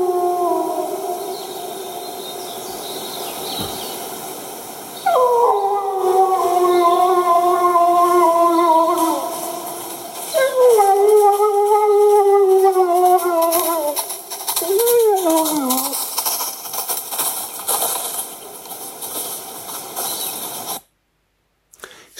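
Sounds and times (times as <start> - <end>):
wolf howling at medium distance: 0.0 - 3.0, 4.9 - 16.1
robins singing: 0.0 - 16.0.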